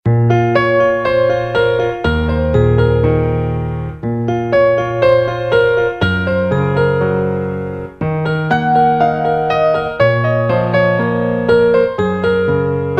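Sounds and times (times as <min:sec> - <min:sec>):
classical piano: 0:00.0 - 0:12.9.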